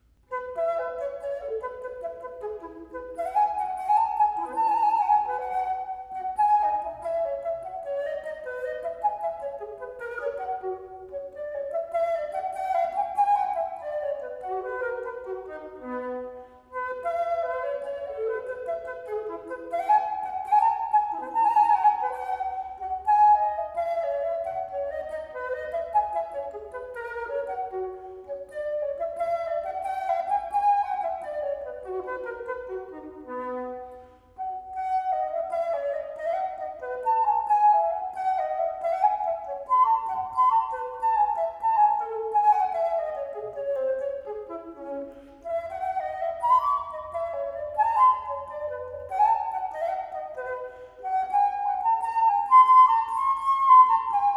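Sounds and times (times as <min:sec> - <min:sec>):
Baroque flute playing a gigue: 0:00.0 - 0:54.3.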